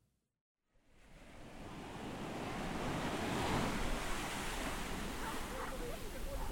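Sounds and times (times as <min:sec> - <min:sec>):
ocean waves and surf rolling in: 0:00.8 - 0:06.4.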